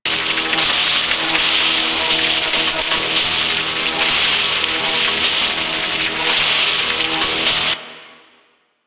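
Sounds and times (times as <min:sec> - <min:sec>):
electric arc buzzing: 0:00.0 - 0:07.9.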